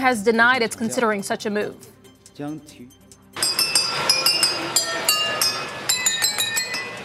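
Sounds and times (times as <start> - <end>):
speech: 0.0 - 3.0
model train in a Hamburg museum playing a melody on nearly 3,000 wine glasses: 3.4 - 7.0.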